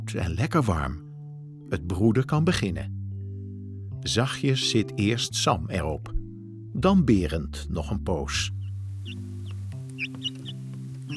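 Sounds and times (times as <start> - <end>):
speech: 0.1 - 1.0, 1.7 - 3.0, 4.0 - 6.2, 6.8 - 9.2
newborn chick peeping softly on a farm: 8.6 - 11.1.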